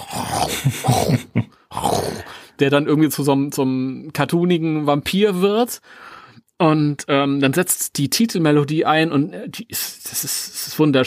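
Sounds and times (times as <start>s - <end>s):
lion roar from a film studio logo: 0.0s - 2.3s
speech: 0.4s - 1.5s, 2.6s - 11.0s.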